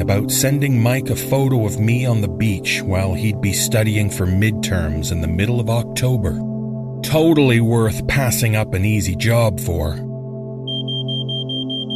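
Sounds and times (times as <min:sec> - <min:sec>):
speech: 0:00.1 - 0:10.1
kitchen smoke alarm set off by smoke from a burnt omelette: 0:10.6 - 0:11.9.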